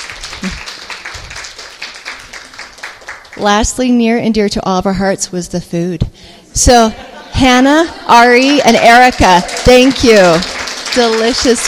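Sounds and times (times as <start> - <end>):
audience applauding for the committee: 0.0 - 3.6, 8.1 - 11.6
speech: 3.4 - 11.6.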